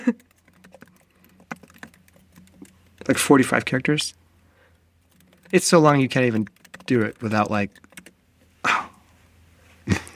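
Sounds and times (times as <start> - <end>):
speech: 0.0 - 0.3, 3.1 - 4.2, 5.5 - 7.8
fingers typing a long password on a computer keyboard: 0.0 - 4.0, 5.0 - 8.2.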